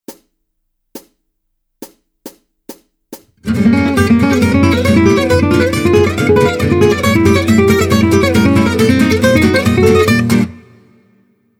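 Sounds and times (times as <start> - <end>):
gypsy jazz guitar lick: 3.4 - 11.0.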